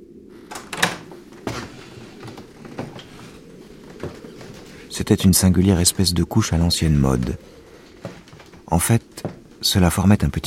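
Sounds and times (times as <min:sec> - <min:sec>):
door lock metallic click and rattle: 0:00.5 - 0:01.1
speech: 0:05.0 - 0:07.6, 0:08.7 - 0:10.4.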